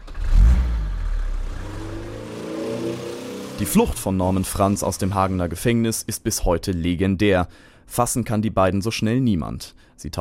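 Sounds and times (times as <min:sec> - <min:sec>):
car engine revving and accelerating away on a street in Hagen, Germany: 0:00.0 - 0:05.4
speech: 0:03.6 - 0:10.1.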